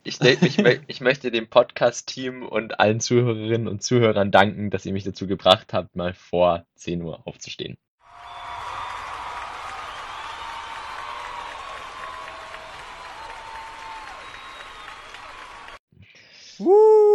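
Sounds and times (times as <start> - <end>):
laughter: 0.1 - 1.0
speech: 0.1 - 7.8, 16.6 - 17.1
crowd applause sound effect: 8.0 - 15.8.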